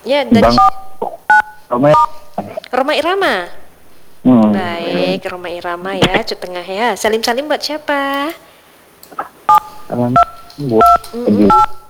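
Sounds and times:
speech: 0:00.0 - 0:00.8, 0:01.7 - 0:03.6, 0:04.2 - 0:08.5, 0:09.1 - 0:11.8
voice-like sounds: 0:00.3 - 0:07.2, 0:09.1 - 0:11.8
telephone keypad tones from a caller pressing buttons: 0:00.4 - 0:02.4, 0:09.5 - 0:11.8.

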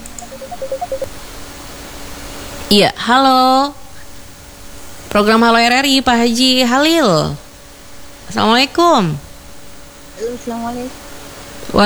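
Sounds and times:
telephone keypad beeps while dialing: 0:00.0 - 0:01.1
faint hiss: 0:00.0 - 0:11.8
speech: 0:00.4 - 0:01.0, 0:02.7 - 0:03.8, 0:05.1 - 0:07.4, 0:08.3 - 0:09.2, 0:10.2 - 0:11.0, 0:11.7 - 0:11.8.

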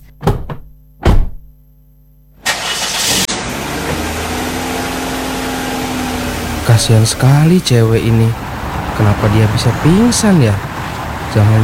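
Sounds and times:
car door thudding shut: 0:00.2 - 0:01.5
car engine cranking, starting and running: 0:02.4 - 0:11.6
speech: 0:06.7 - 0:10.7, 0:11.3 - 0:11.6.

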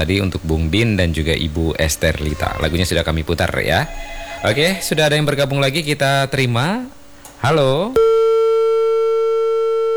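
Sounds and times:
speech: 0:00.0 - 0:08.1
telephone busy tone after a call disconnects: 0:08.0 - 0:09.9.

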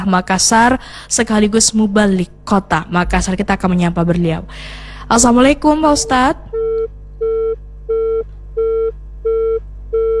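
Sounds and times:
speech: 0:00.0 - 0:06.6
low constant hum: 0:00.0 - 0:10.1
disconnected telephone line tone beeps: 0:06.0 - 0:10.1.

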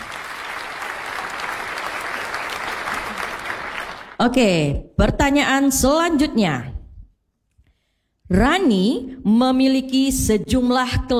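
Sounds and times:
audience applause at a quiz competition after a correct answer: 0:00.0 - 0:04.2
speech: 0:04.2 - 0:06.7, 0:08.3 - 0:11.1.

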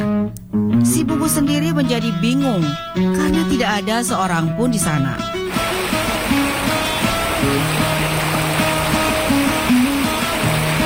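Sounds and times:
soft slow melody of low musical tones: 0:00.0 - 0:10.8
speech: 0:01.2 - 0:05.8
large river rushing near a graveyard: 0:04.7 - 0:10.8.

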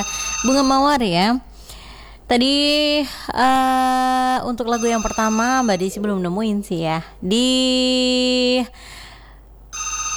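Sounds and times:
electronic telephone ring with a rapid pulsing warble: 0:00.0 - 0:01.2, 0:04.7 - 0:06.3
speech: 0:00.0 - 0:01.5, 0:02.3 - 0:09.0
telephone ringing: 0:00.0 - 0:01.5, 0:04.6 - 0:07.2, 0:09.7 - 0:10.1.

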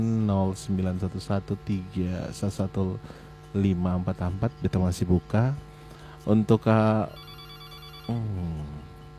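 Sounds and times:
speech: 0:00.0 - 0:07.3, 0:08.1 - 0:08.9
low steady hum: 0:00.0 - 0:09.1
telephone ringing with an incoming caller on a call-in line: 0:06.8 - 0:09.1.

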